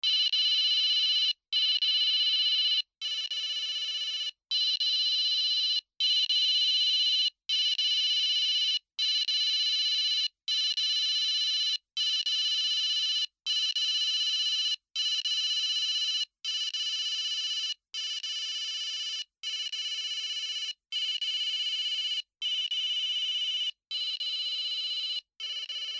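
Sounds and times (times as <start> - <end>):
ringtone: 0.1 - 25.9.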